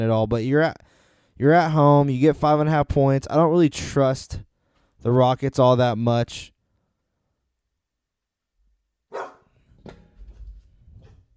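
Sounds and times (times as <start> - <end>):
speech: 0.0 - 6.5
dog barking: 9.1 - 9.5.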